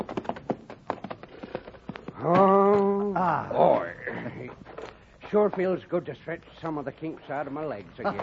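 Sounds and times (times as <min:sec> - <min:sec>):
horses' hooves clip-clopping as riders arrive: 0:00.0 - 0:03.2
speech: 0:03.2 - 0:04.5, 0:05.3 - 0:08.2.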